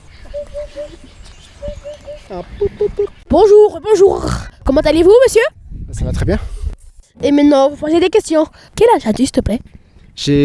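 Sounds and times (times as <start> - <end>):
Eurasian Hoopoe calling with soft low hollow hoots: 0.0 - 3.2
speech: 2.3 - 6.6, 7.2 - 10.4.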